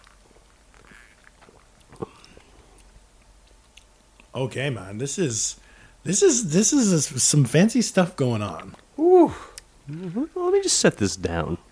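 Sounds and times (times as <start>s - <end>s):
person sipping a cocktail with wet swallowing noises: 0.0s - 3.0s
speech: 4.4s - 11.6s.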